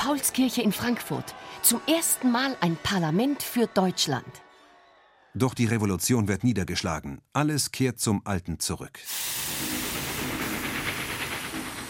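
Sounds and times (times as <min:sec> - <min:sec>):
speech: 0:00.0 - 0:04.4, 0:05.3 - 0:09.7
steam locomotive hissing: 0:09.1 - 0:11.8.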